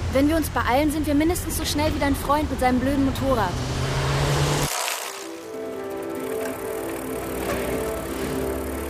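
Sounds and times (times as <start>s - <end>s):
speech: 0.1s - 4.0s
bicycle ridden on a bright day whirring: 2.8s - 8.8s.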